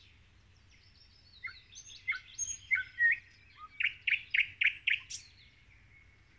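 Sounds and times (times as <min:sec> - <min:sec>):
common nightingale singing: 0:00.0 - 0:06.3.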